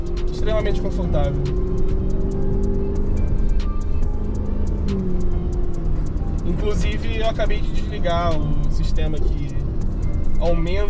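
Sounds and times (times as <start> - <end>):
faint regular ticking: 0.0 - 10.8
road rumble inside a large car with air suspension driving over bumps: 0.0 - 10.8
speech: 0.4 - 2.0, 6.6 - 9.5, 10.4 - 10.8.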